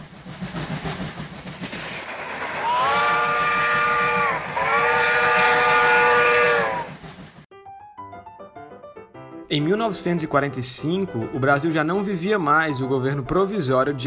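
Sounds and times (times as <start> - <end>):
train rumbling and clattering as it gets moving: 0.0 - 7.5
loud train whistle blasts: 2.6 - 7.0
speech: 9.6 - 14.0.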